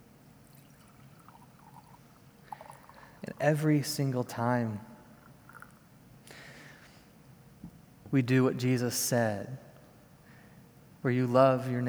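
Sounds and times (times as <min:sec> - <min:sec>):
wine being poured into a vessel: 0:00.4 - 0:06.5
speech: 0:03.4 - 0:04.9, 0:08.1 - 0:09.6, 0:11.0 - 0:11.8.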